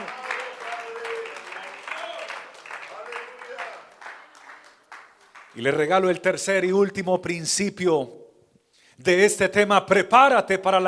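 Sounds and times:
congregation applauding: 0.0s - 5.8s
speech: 5.6s - 8.2s, 9.0s - 10.8s.

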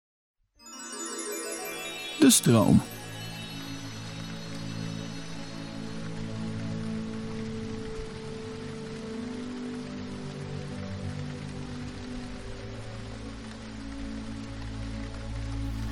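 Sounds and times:
steady rain pouring down outside: 0.7s - 15.9s
speech: 2.2s - 3.0s.

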